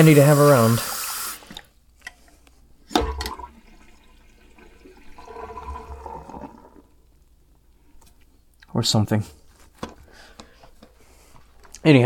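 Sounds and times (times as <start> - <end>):
speech: 0.0 - 1.0, 8.8 - 9.4, 11.8 - 12.0
water running from a tap while hands are washed with soap: 0.0 - 1.7, 2.9 - 7.2
water splash: 2.9 - 6.9.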